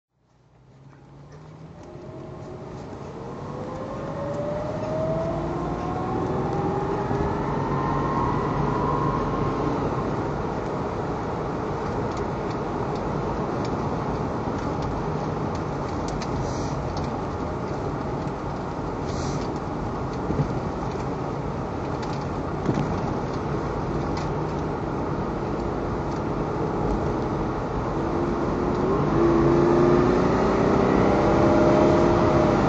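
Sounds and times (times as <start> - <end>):
Jaguar XJS V12 car driving: 0.2 - 32.6.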